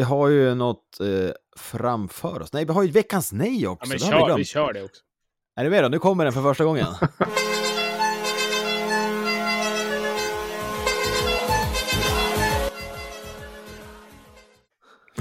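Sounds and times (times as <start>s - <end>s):
speech: 0.0s - 7.6s
laughter: 3.8s - 4.4s, 6.8s - 7.4s
loud horn blast: 7.3s - 14.7s.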